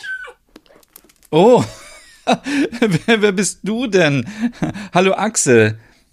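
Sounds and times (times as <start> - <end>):
small dog whimpering: 0.0 - 0.8
speech: 1.3 - 5.9
laughter: 1.5 - 3.4.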